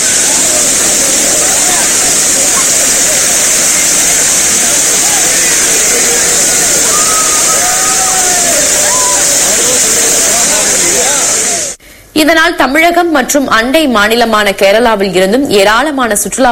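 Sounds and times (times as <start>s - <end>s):
faint crowd voices murmuring: 0.0s - 11.8s
waterfall roaring with pouring water: 0.0s - 11.8s
speech: 12.2s - 16.5s.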